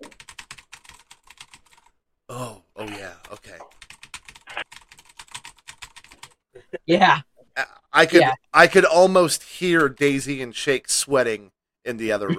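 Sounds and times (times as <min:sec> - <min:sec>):
typing on a loud clacky computer keyboard: 0:00.0 - 0:01.9, 0:03.2 - 0:06.4
speech: 0:06.9 - 0:12.3.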